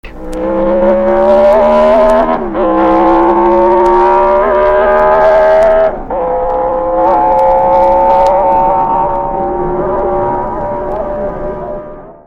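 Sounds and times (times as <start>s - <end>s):
Guzzi V8 engine: 0.0s - 12.2s.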